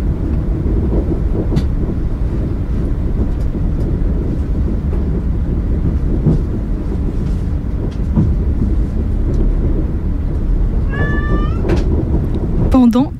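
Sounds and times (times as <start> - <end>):
moving train carriage rumbling and rattling in France: 0.0 - 13.1
leashed cat meowing on a train seat: 10.8 - 11.7.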